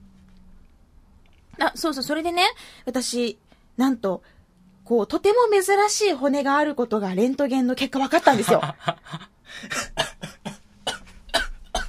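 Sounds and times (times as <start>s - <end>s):
speech: 1.6s - 10.0s
laughter: 8.2s - 10.4s
person coughing and choking: 9.7s - 11.8s.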